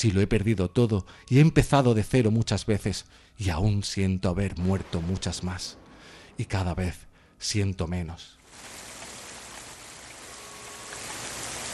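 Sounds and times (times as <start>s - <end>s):
speech: 0.0s - 5.8s, 6.4s - 8.4s
heavy rain beating against window glass: 8.4s - 11.7s.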